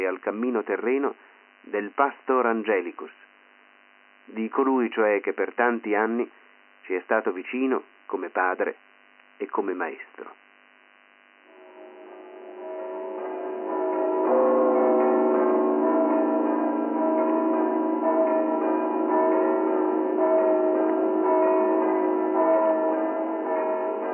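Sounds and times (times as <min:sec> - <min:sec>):
speech: 0:00.0 - 0:03.2, 0:04.3 - 0:10.4
church bells pealing: 0:11.5 - 0:24.1.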